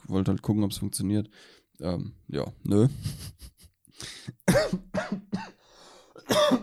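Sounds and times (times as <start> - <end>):
speech: 0.1 - 5.5
strained gasps: 3.9 - 4.4, 5.6 - 6.3
harsh coughing after choking on saliva: 4.4 - 5.6, 6.2 - 6.6.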